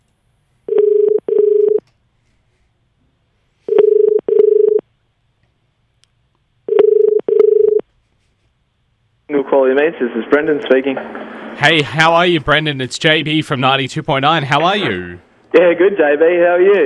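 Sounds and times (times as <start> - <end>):
telephone ring tone: 0.7 - 1.8, 3.7 - 4.8, 6.7 - 7.8
speech: 9.5 - 16.8.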